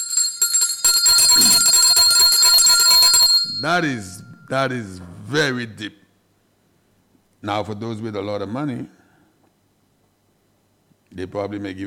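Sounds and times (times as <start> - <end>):
bright loud bell ringing rapidly: 0.0 - 4.5
speech: 3.6 - 6.0, 7.4 - 9.0, 11.2 - 11.8.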